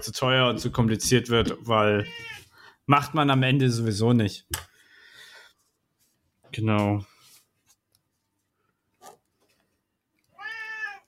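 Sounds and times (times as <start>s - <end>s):
speech: 0.0s - 4.7s, 6.5s - 7.1s
cat meowing: 2.0s - 2.5s, 10.3s - 11.0s.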